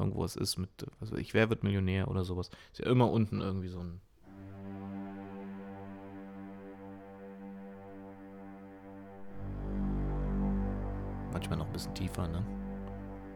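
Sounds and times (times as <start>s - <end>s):
speech: 0.0s - 4.1s, 11.3s - 12.6s
low sustained string drone: 4.3s - 13.3s.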